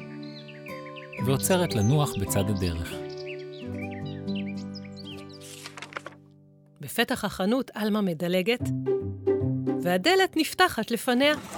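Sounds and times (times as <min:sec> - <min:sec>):
several birds chirping in a palm tree: 0:00.0 - 0:05.9
speech: 0:01.2 - 0:03.1, 0:07.0 - 0:09.2, 0:09.8 - 0:11.5.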